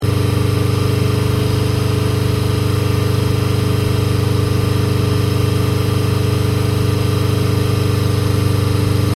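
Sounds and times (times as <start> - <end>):
cat-back exhaust above 3k: 0.0 - 9.1.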